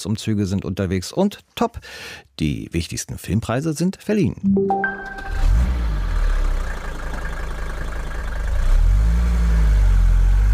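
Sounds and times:
speech: 0:00.0 - 0:05.7
diesel car engine starting, revving and idling: 0:05.3 - 0:10.5.

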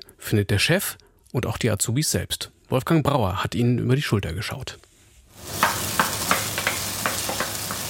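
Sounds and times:
speech: 0:00.3 - 0:05.6
chicken meat sizzling in a frying pan: 0:05.4 - 0:07.8.

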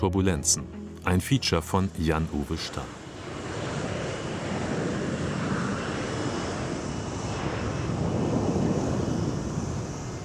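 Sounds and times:
speech: 0:00.0 - 0:03.0
jet aircraft roaring on the runway at Berlin-Tegel airport: 0:02.0 - 0:10.2
gusty wind buffeting the microphone on airport visitor terrace: 0:03.0 - 0:10.2.

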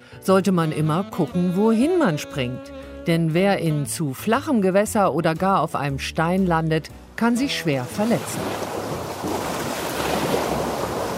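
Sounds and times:
speech: 0:00.2 - 0:08.7
sea waves breaking on a summer shore: 0:07.8 - 0:11.1.

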